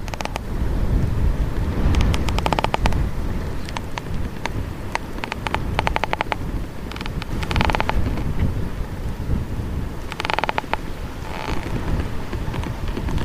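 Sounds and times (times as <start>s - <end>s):
old decaying tree trunk creaking and ticking: 0.0s - 0.5s, 1.8s - 8.6s, 10.0s - 13.2s
strong wind roaring: 0.0s - 13.2s.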